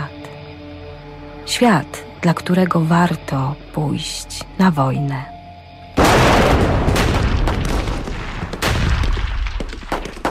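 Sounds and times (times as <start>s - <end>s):
speech: 1.5s - 5.3s
battlefield artillery booms: 6.0s - 10.2s
gunfire: 6.0s - 10.2s.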